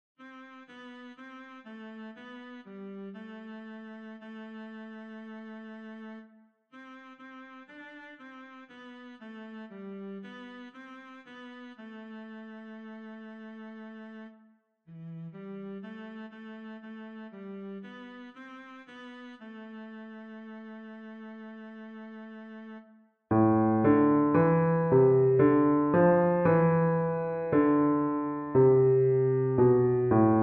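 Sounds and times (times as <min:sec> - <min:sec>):
music variations without cello: 0:23.3 - 0:30.4.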